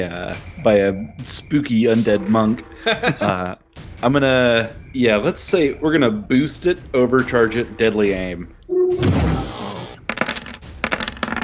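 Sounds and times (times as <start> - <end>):
speech: 0.0 - 9.5
laughter: 1.9 - 3.6
die clattering onto a hard tabletop: 10.1 - 11.4.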